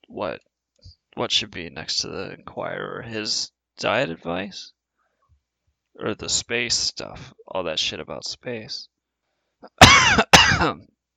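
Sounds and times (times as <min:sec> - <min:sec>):
speech: 0:00.1 - 0:00.5, 0:01.2 - 0:04.8, 0:06.0 - 0:08.9, 0:09.6 - 0:10.9
person coughing: 0:09.6 - 0:10.9
person harshly clearing throat: 0:09.6 - 0:10.9.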